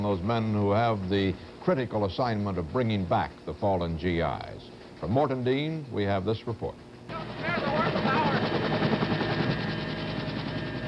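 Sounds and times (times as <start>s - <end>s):
speech: 0.0s - 7.6s
steady thudding drone of helicopter: 7.1s - 10.8s
rapid machine-gun fire from helicopter crew: 7.4s - 9.3s.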